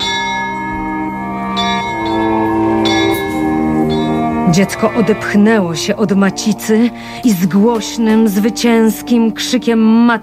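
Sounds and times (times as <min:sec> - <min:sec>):
small bells ringing in a castle courtyard: 0:00.0 - 0:07.3
speech: 0:04.5 - 0:10.2.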